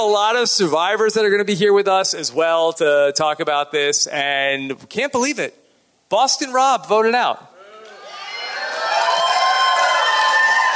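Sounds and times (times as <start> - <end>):
speech: 0.0 - 7.5
large live audience cheering and shouting: 7.6 - 10.7.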